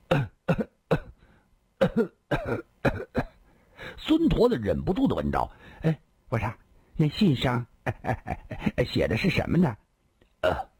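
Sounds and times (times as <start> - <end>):
drunk man coughing harshly: 0.0 - 1.2, 1.8 - 3.4
speech: 2.0 - 2.7, 4.0 - 9.8, 10.4 - 10.7.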